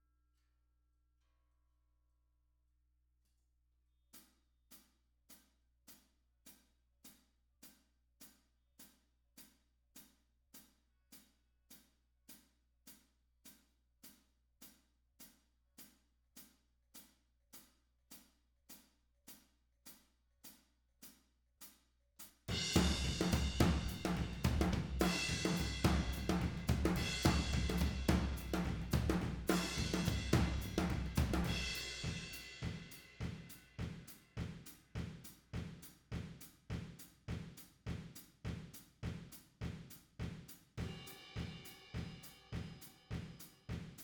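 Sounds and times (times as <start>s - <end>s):
tom drums: 22.5s - 44.0s.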